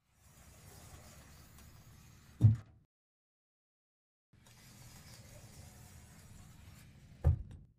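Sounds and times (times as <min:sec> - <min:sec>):
cupboard door opening and closing: 0:07.1 - 0:07.7.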